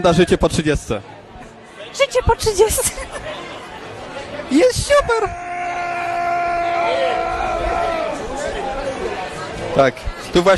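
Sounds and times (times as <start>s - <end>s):
speech: 0.0s - 1.1s, 2.0s - 3.5s, 4.5s - 5.4s, 9.8s - 10.5s
crowd chatter during a lively evening out: 0.0s - 10.5s
man screaming loudly during a lively evening out: 5.1s - 8.1s.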